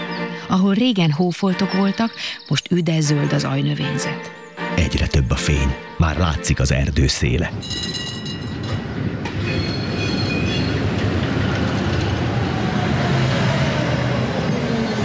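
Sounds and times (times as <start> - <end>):
speech: 0.5 - 8.2
tram wheels screeching against the rails: 7.7 - 15.0.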